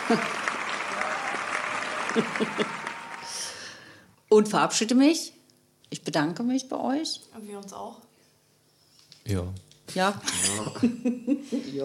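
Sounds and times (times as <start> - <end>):
crowd applauding: 0.0 - 3.9
speech: 0.1 - 0.4, 2.1 - 2.9, 4.3 - 8.1, 9.3 - 11.8
laughter: 2.0 - 3.0, 10.2 - 11.7.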